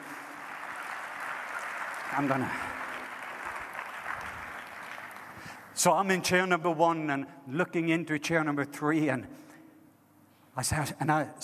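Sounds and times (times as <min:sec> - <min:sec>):
audience golf claps: 0:00.0 - 0:05.6
speech: 0:02.1 - 0:02.7, 0:05.8 - 0:09.4, 0:10.6 - 0:11.4.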